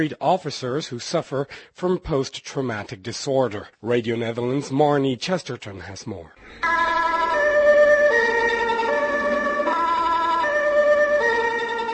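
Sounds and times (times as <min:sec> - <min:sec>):
speech: 0:00.0 - 0:06.9
two-tone emergency vehicle sirens wailing at a rescue scene: 0:06.4 - 0:11.9.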